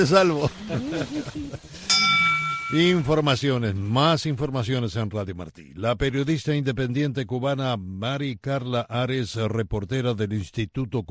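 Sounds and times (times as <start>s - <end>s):
laughter: 0.0s - 3.0s
speech: 0.0s - 11.0s
single bright bell strike ringing: 1.8s - 3.4s.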